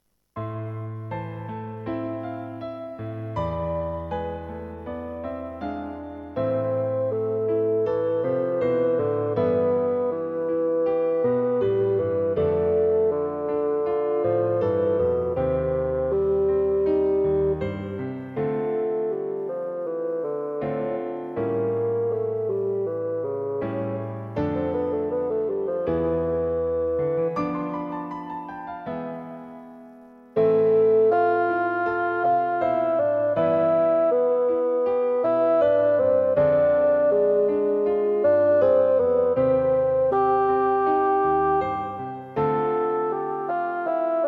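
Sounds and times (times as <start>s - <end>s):
piano: 0.0s - 44.2s
bassoon: 6.2s - 27.7s, 30.4s - 44.2s.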